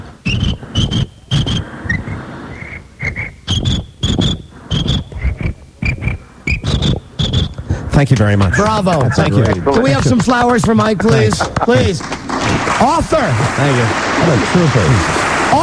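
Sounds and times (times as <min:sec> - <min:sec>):
thin high whistle-like tone: 0:00.2 - 0:07.6
voice imitating a cricket chirping under a bag: 0:00.2 - 0:07.6
laughter: 0:04.5 - 0:15.6
speech: 0:08.0 - 0:12.2, 0:12.8 - 0:15.6.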